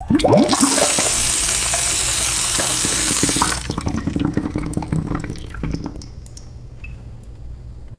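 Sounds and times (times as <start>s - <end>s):
water gurgling down a shower drain: 0.0s - 6.7s.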